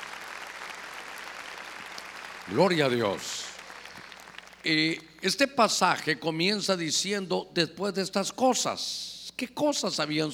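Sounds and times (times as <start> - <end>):
audience clapping loudly: 0.0 - 5.0
speech: 2.5 - 3.5, 4.6 - 10.3.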